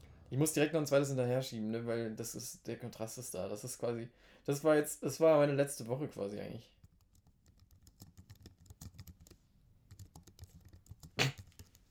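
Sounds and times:
speech: 0:00.3 - 0:06.8
typing on a computer keyboard: 0:06.8 - 0:11.9.

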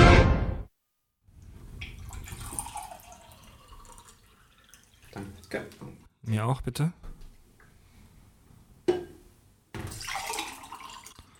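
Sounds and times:
water pouring into a drinking glass: 0:01.8 - 0:05.7, 0:09.8 - 0:11.3
speech: 0:05.5 - 0:07.0.

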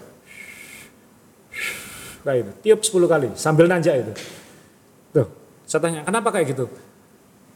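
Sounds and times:
breath blown out through pursed lips as a breathing technique: 0:00.2 - 0:02.3
speech: 0:02.2 - 0:04.4, 0:05.2 - 0:06.9.

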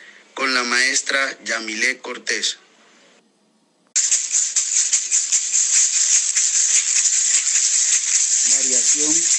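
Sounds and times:
speech: 0:00.5 - 0:02.6
hollow bamboo tube shaker rattling: 0:04.0 - 0:09.3.

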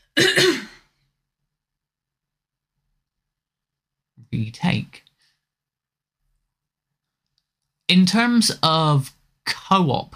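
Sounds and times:
throat clearing: 0:00.0 - 0:00.9
short rasping cough: 0:00.0 - 0:01.0
speech: 0:04.3 - 0:05.1, 0:07.9 - 0:10.1.

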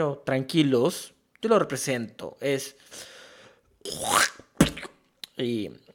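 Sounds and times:
speech: 0:00.0 - 0:03.1, 0:03.8 - 0:04.5, 0:05.4 - 0:05.9
person imitating wet productive pneumonia cough: 0:03.9 - 0:05.0.

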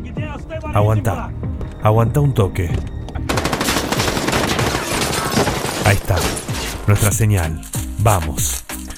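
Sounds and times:
speech: 0:00.7 - 0:02.9, 0:05.8 - 0:08.6
rapid machine gun fire: 0:03.3 - 0:06.7.

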